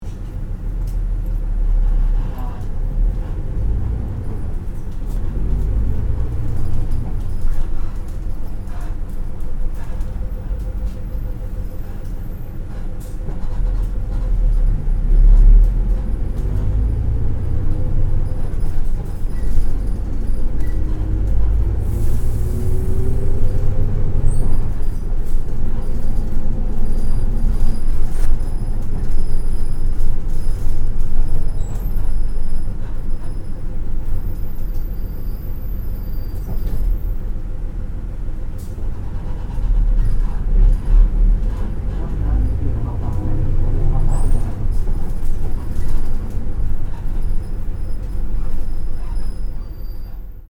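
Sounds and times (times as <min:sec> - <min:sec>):
bus interior noise: 0:00.0 - 0:50.5.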